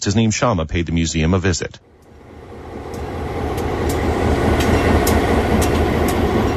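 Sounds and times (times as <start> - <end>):
speech: 0.0 - 1.9
restored streamliner train rolling along the rails: 1.9 - 6.5
train wheels clicking over track joints: 2.9 - 6.5.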